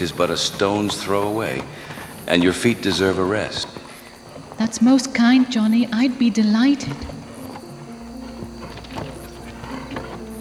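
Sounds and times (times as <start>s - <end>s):
speech: 0.0s - 3.8s, 4.6s - 7.2s
faint mechanical rattle: 0.0s - 10.4s
hooves of a horse pulling a buggy clopping on a hard street: 0.0s - 10.4s.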